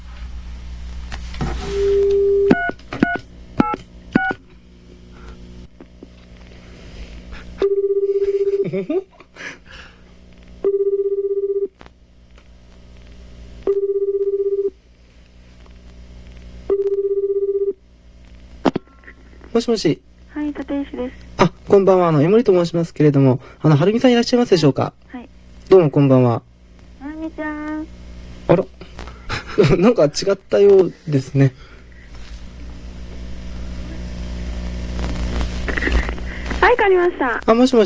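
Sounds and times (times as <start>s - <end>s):
speech: 1.4s - 2.0s, 19.6s - 25.1s, 25.7s - 26.5s, 28.5s - 28.8s, 29.6s - 31.7s, 36.9s - 37.8s
phone dialing tones: 1.8s - 4.4s, 7.6s - 8.3s, 10.6s - 11.7s, 13.7s - 14.8s, 16.7s - 17.8s
phone ringing tones: 7.6s - 8.6s, 10.6s - 11.7s, 13.7s - 14.8s, 16.7s - 17.8s
laughter: 8.1s - 9.6s, 29.2s - 30.0s, 35.6s - 36.5s.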